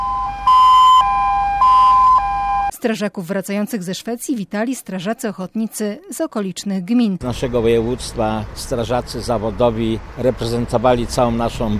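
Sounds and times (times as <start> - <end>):
electronic sirens welcoming returning firefighters: 0.0 - 2.8
speech: 2.8 - 11.7.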